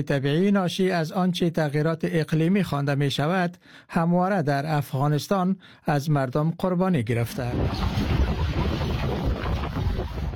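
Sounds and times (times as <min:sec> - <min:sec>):
speech: 0:00.0 - 0:08.2
strong cold gusts of wind carrying dust in Kandahar province: 0:07.4 - 0:10.3.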